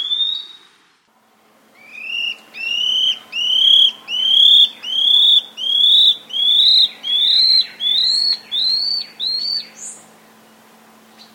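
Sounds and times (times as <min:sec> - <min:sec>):
Scale-backed antbird calling with rising whistled notes in South America: 0:00.0 - 0:00.8, 0:01.8 - 0:10.1.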